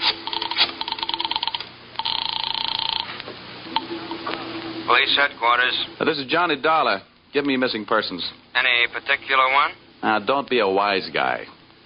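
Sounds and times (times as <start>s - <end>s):
buzzing telephone ring tone: 0.2s - 4.0s
telephone dialing clicks: 0.3s - 3.1s
speech: 4.9s - 11.6s.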